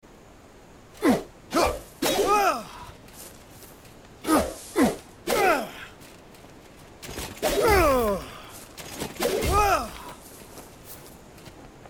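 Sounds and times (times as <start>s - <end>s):
attack effort grunts: 1.0s - 2.9s, 4.2s - 5.9s, 7.4s - 8.5s, 9.2s - 10.2s.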